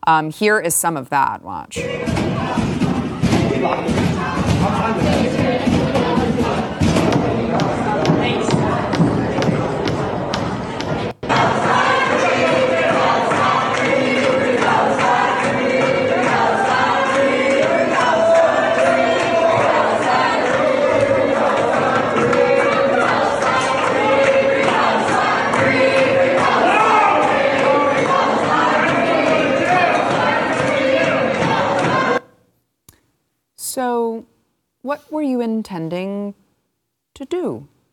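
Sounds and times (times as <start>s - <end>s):
speech: 0.0s - 2.8s, 3.6s - 5.4s, 35.2s - 36.4s, 37.2s - 37.7s
protesters shouting: 1.8s - 5.2s, 11.2s - 32.2s
crowd of protesters pounding on library doors: 1.8s - 32.2s.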